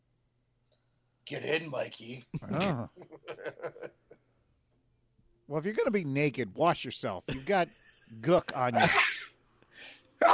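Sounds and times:
speech: 1.3s - 4.3s, 5.5s - 9.2s, 10.2s - 10.3s
laughter: 2.4s - 4.3s
sneeze: 8.8s - 9.3s, 10.2s - 10.3s.

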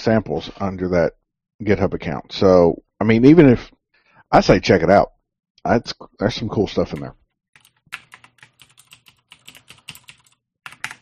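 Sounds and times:
speech: 0.0s - 7.2s
rapid typing on a computer keyboard: 6.9s - 10.9s.

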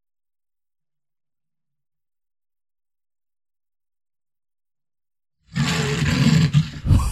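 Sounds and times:
alligator roar: 5.5s - 7.1s.

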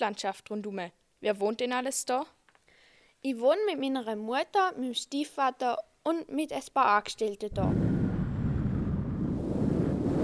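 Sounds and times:
speech: 0.0s - 2.4s, 3.2s - 7.9s
strong cold wind blowing into the microphone: 7.5s - 10.2s.

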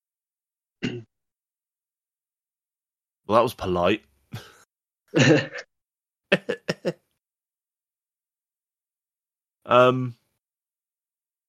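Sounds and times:
single short sharp cough: 0.8s - 1.1s
speech: 3.3s - 4.5s, 5.1s - 5.7s, 9.7s - 10.2s.

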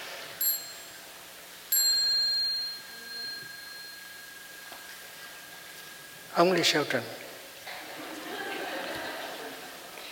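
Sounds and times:
small bell rung as a signal for children to stand and bow: 0.4s - 7.2s
speech: 6.4s - 7.2s
laughter: 7.6s - 10.1s.

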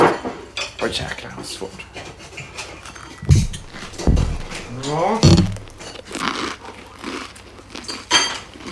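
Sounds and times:
speech: 0.9s - 2.2s, 4.8s - 5.6s
someone biting into vegetarian toast: 3.6s - 8.6s.

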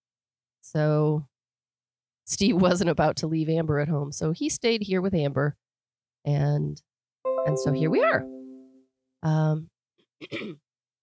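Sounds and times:
speech: 0.7s - 1.3s, 2.3s - 5.6s, 6.2s - 8.4s, 9.2s - 10.6s
throat clearing: 10.2s - 10.6s.

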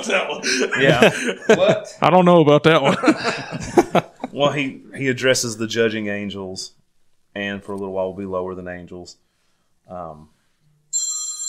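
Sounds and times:
laughter: 0.0s - 2.0s, 2.7s - 4.8s
speech: 0.0s - 6.8s, 7.4s - 9.2s, 9.9s - 10.4s
telephone ringing with a high electronic trill: 10.9s - 11.4s.

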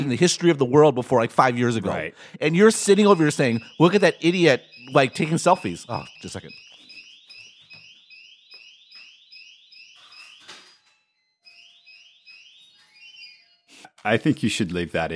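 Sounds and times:
speech: 0.0s - 6.6s, 14.0s - 15.1s
shrill electronic alarm beeping: 2.4s - 13.9s.

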